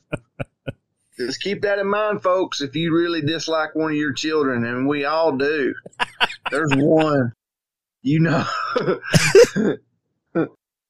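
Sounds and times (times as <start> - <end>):
laughter: 0.0 - 0.7, 5.7 - 7.3, 8.4 - 9.8
speech: 1.2 - 7.4, 8.0 - 10.6
person coughing: 5.9 - 7.1, 8.4 - 9.8.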